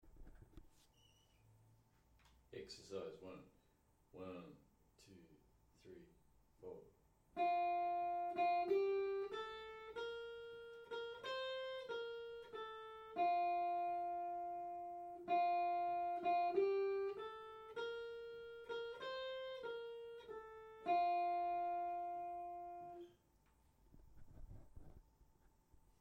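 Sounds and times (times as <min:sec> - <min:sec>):
twin guitar solos: 0:07.4 - 0:23.0.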